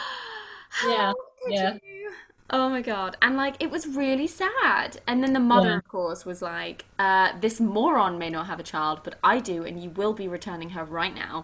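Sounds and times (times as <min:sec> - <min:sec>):
person letting out a sharp voiced gasp: 0:00.0 - 0:00.9
speech: 0:00.8 - 0:01.9, 0:02.5 - 0:11.4.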